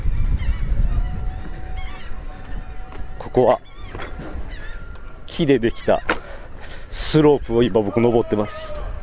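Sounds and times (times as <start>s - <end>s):
seagulls calling in harsh honking cries at a seaside amusement area: 0.0s - 9.0s
steady low rumble of outdoor wind or traffic: 0.0s - 9.0s
speech: 3.2s - 4.2s, 5.4s - 6.2s, 6.9s - 8.8s.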